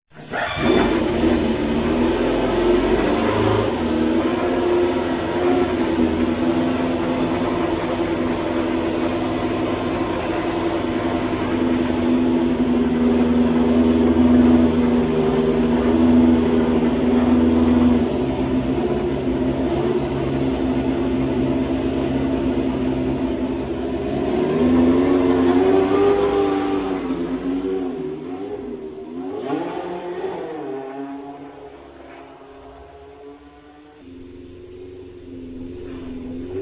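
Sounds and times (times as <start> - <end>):
Tyrrell 011 engine sounds: 0.1 - 36.6.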